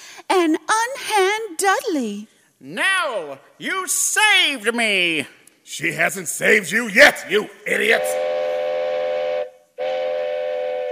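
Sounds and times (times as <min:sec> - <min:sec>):
speech: 0:00.3 - 0:08.4
steam train whistle blowing: 0:07.8 - 0:10.9.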